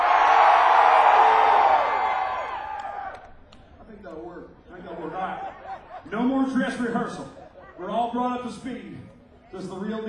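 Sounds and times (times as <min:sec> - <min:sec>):
large audience screaming: 0:00.0 - 0:03.3
laughter: 0:04.8 - 0:07.8
speech: 0:06.8 - 0:07.3, 0:08.1 - 0:10.0.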